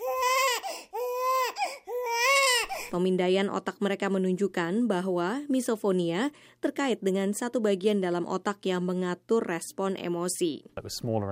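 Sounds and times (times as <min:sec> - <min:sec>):
baby wailing with catching breaths: 0:00.0 - 0:03.0
speech: 0:02.9 - 0:11.2.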